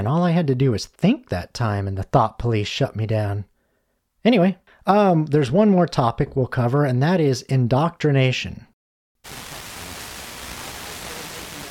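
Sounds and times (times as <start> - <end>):
speech: 0.0 - 3.5, 4.2 - 9.4
radio static hiss: 9.3 - 11.6.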